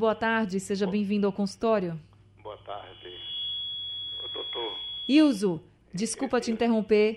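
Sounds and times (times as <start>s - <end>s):
speech: 0.0s - 2.1s, 4.5s - 7.1s
faint voices over narrow-band telephone line: 2.5s - 3.5s, 4.1s - 5.4s
audio feedback from caller's radio over phone: 2.6s - 5.5s.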